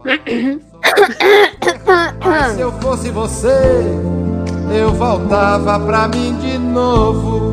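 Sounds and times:
person clearing throat before singing: 0:00.0 - 0:02.7
speech: 0:00.0 - 0:07.4.

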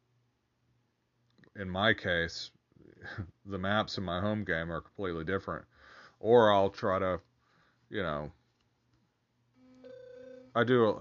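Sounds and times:
speech: 0:01.6 - 0:07.3, 0:07.9 - 0:08.4, 0:10.6 - 0:10.9
phone notification tone: 0:09.7 - 0:10.6.

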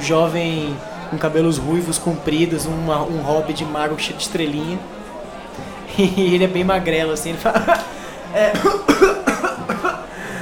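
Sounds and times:
speech: 0:00.0 - 0:05.0, 0:05.6 - 0:09.4
laughter: 0:05.4 - 0:06.6, 0:07.3 - 0:10.3
harsh coughs: 0:08.4 - 0:10.1.

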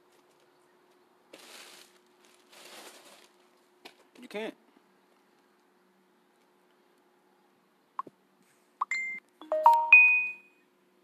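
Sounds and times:
speech: 0:04.3 - 0:04.6
bright electronic notification chimes: 0:08.8 - 0:10.4.

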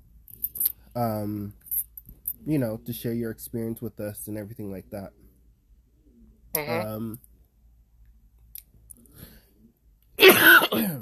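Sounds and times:
speech: 0:01.0 - 0:01.6, 0:02.4 - 0:05.2, 0:06.6 - 0:07.3
harsh throat clearing and coughing from a dry throat: 0:10.2 - 0:11.0.

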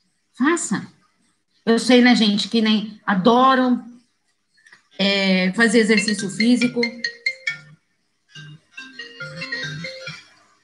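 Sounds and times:
speech: 0:00.4 - 0:01.0, 0:01.6 - 0:03.9, 0:05.0 - 0:07.2
bright electronic phone ringtone melody for an incoming call: 0:05.7 - 0:10.4.

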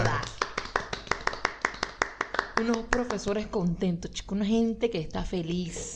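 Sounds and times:
hands clapping in applause: 0:00.0 - 0:03.4
speech: 0:02.6 - 0:05.9.

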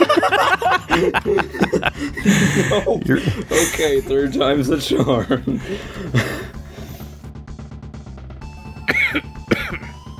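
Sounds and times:
laughter: 0:00.0 - 0:06.7
person coughing after coffee went down wrong: 0:02.2 - 0:04.2, 0:08.9 - 0:10.0
speech: 0:02.2 - 0:06.3
throat clearing: 0:08.9 - 0:10.0.

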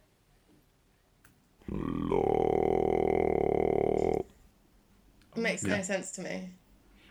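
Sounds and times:
extremely low vocal fry growl at about 30 hertz: 0:01.6 - 0:04.4
speech: 0:05.4 - 0:06.6.

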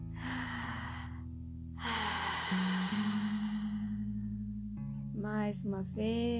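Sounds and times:
slow deep breath drawn in through the mouth: 0:00.2 - 0:04.1
soft steady low musical drone: 0:00.2 - 0:04.6
speech: 0:05.5 - 0:06.3.

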